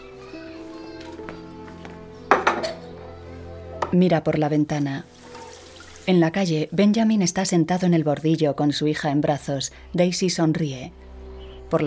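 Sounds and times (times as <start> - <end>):
drinking glasses clinking as they are carried to a sink: 2.3 - 2.9
speech: 3.9 - 5.1, 6.1 - 11.1.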